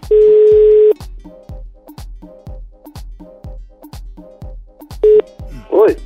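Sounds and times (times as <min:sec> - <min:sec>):
short electronic telephone dialing beeps: 0:00.1 - 0:00.9, 0:05.0 - 0:05.3
telephone line tone: 0:00.1 - 0:01.0, 0:05.0 - 0:05.3.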